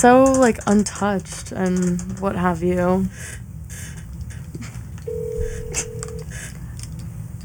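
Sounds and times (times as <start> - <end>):
speech: 0.0 - 3.4
low hum: 0.0 - 7.4
steady electronic telephone tone: 5.1 - 6.4.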